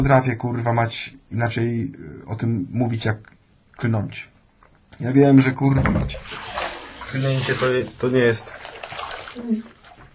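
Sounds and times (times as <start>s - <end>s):
speech: 0.0s - 4.3s, 4.9s - 9.8s
water running from a tap: 6.1s - 10.0s.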